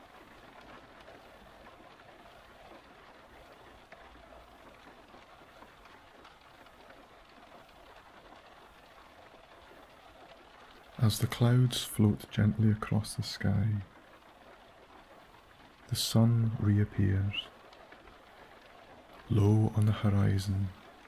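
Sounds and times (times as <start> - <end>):
dense rain pattering on a car roof: 0.0 - 21.0
speech: 11.0 - 13.9, 15.9 - 17.6, 19.3 - 20.8.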